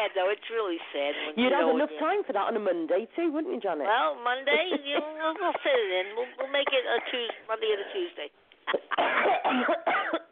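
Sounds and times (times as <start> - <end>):
speech: 0.0 - 10.2
harsh raspy coughs: 8.7 - 10.2.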